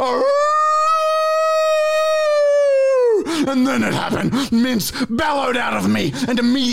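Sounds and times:
person howling like a wolf: 0:00.0 - 0:03.2
speech: 0:03.6 - 0:06.7.

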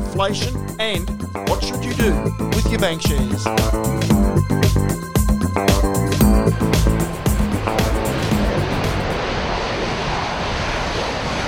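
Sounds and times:
speech: 0:00.2 - 0:04.9, 0:06.3 - 0:07.8
F-35 Lightning II fighter jet engine roaring in flight: 0:06.0 - 0:11.4.

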